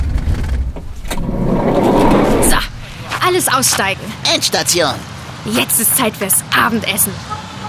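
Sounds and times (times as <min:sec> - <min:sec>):
van engine rumbling as the van rolls to a halt: 0:00.0 - 0:05.3
speech: 0:03.4 - 0:07.4.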